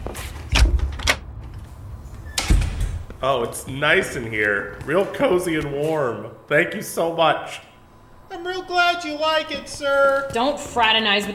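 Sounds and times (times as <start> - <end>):
heavy prison cell door grinding open: 2.3 - 3.1
speech: 3.2 - 7.7, 8.4 - 11.3.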